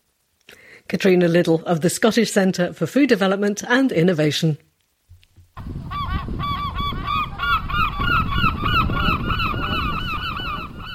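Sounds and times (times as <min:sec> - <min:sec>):
speech: 0:00.9 - 0:04.7
flock of seagulls crying: 0:05.6 - 0:10.9.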